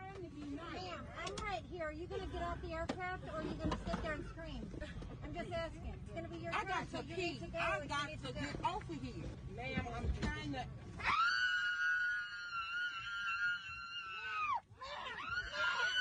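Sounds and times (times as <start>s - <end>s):
agitated overlapping voices aboard a plane: 0.0s - 10.9s
woman screaming aboard a plane: 11.0s - 15.9s.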